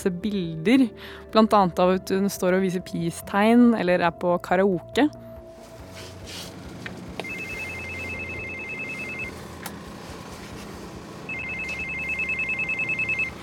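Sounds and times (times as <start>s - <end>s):
speech: 0.0s - 5.3s
electronic doorbell ringing at a house: 7.2s - 9.5s, 11.3s - 13.4s.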